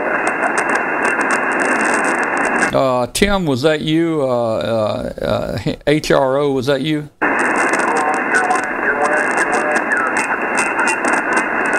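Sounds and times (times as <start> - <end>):
faint voice in weak ham radio transmission: 0.0 - 1.2, 7.6 - 11.7
steady ham radio static hiss: 0.0 - 11.7
speech: 2.7 - 7.2.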